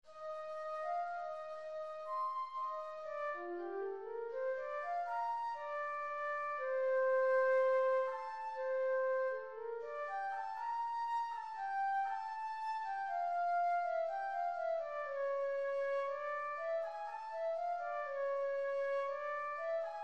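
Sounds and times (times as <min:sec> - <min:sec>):
flute playing: 0:00.1 - 0:20.0.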